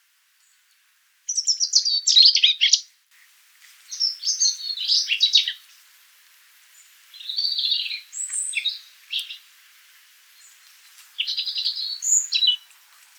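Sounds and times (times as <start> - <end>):
light background hiss: 0.0 - 13.1
European robin Erithacus rubecula singing liquid warbles and thin notes: 1.3 - 2.9, 3.9 - 5.8, 6.8 - 9.5, 10.3 - 12.9.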